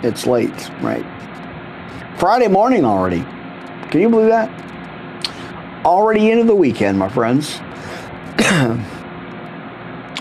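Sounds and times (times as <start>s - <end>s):
speech: 0.0s - 1.4s, 2.2s - 4.7s, 5.8s - 7.6s, 8.4s - 8.9s
cough into a microphone: 8.3s - 9.0s.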